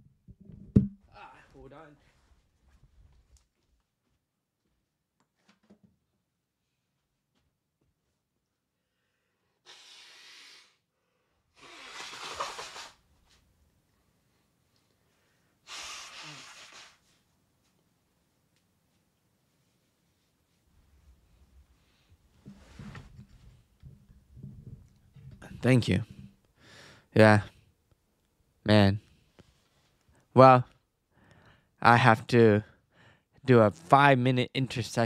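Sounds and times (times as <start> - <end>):
speech: 1.6 - 2.2, 25.6 - 26.2, 27.1 - 27.5, 28.7 - 29.0, 30.4 - 30.7, 31.8 - 32.7, 33.4 - 35.0
nose blowing: 9.6 - 10.9, 11.5 - 13.1, 15.6 - 17.2.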